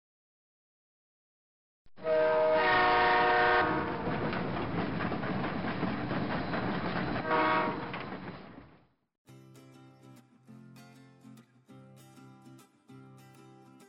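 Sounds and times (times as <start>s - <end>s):
train horn: 2.0s - 4.1s, 7.2s - 8.0s
train rumbling past: 2.0s - 8.9s.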